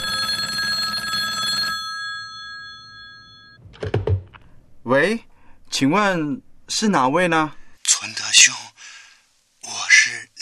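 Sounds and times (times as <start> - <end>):
old telephone bell ringing with a metallic buzzing trill: 0.0 - 3.6
speech: 4.9 - 8.6.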